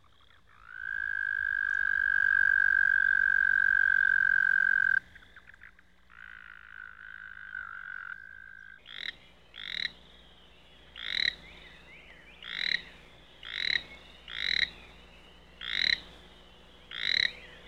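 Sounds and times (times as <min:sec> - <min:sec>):
American toad giving a steady musical trill: 0:00.1 - 0:10.0, 0:11.0 - 0:14.8, 0:15.6 - 0:16.0, 0:16.9 - 0:17.6
birds chirping: 0:02.9 - 0:17.6.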